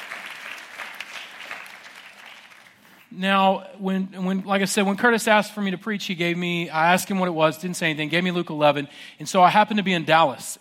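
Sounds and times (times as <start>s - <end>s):
room-sized audience applauding: 0.0s - 3.0s
speech: 3.1s - 10.5s.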